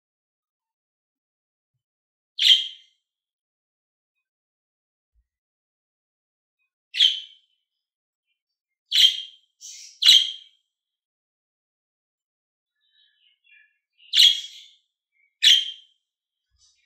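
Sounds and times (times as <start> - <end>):
lovebird chirping: 2.4 - 2.8, 7.0 - 7.4, 8.9 - 10.5, 13.2 - 15.9.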